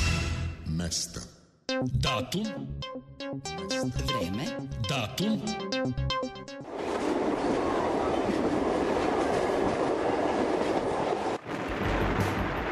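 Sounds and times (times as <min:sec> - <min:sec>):
speech: 0:00.8 - 0:06.6
narrow-gauge steam train on 760 mm heritage railway track rumbling and clattering: 0:06.6 - 0:12.7.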